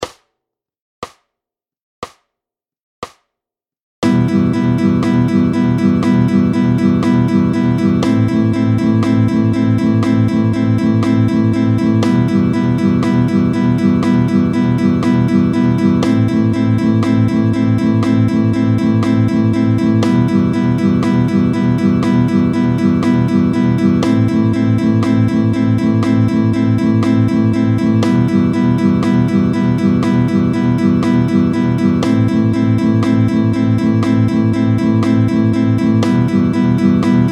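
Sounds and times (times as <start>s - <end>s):
sixteenth note beats at tempo 60: 4.0s - 37.3s.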